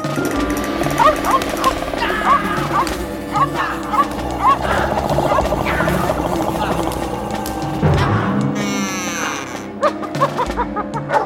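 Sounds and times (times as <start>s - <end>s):
creature growls and roar-like cries: 0.0s - 10.2s
laughter: 0.1s - 11.2s
dog barking and snarling while fighting: 0.2s - 8.4s.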